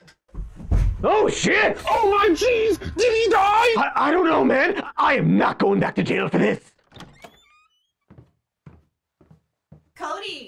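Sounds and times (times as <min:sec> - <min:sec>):
speech: 0:01.0 - 0:06.7
unlocked door opening with a clunk: 0:06.8 - 0:07.7
creaky door hinge squeal: 0:06.9 - 0:08.1.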